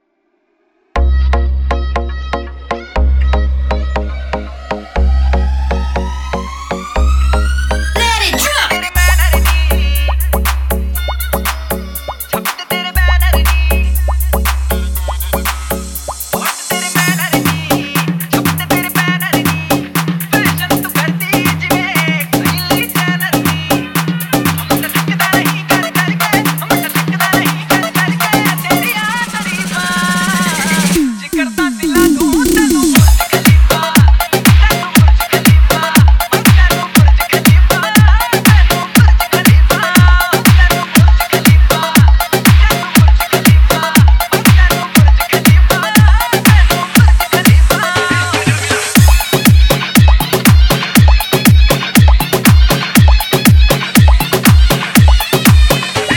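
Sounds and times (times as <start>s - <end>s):
hard EDM bass house remix: 1.0s - 56.1s.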